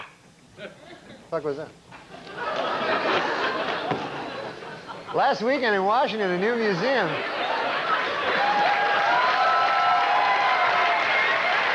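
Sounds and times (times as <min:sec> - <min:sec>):
speech: 0:00.6 - 0:02.5, 0:05.1 - 0:07.3
laughter: 0:02.0 - 0:05.5, 0:06.6 - 0:09.4
studio audience cheering: 0:07.3 - 0:11.7
studio audience clapping: 0:08.1 - 0:11.7.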